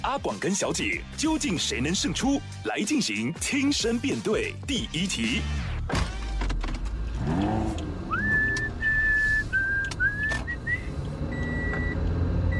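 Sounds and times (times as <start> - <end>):
speech: 0.1 - 6.0
steady rumble of a car engine and road noise: 5.0 - 12.5
person whistling a radio station call-sign jingle: 8.1 - 10.9.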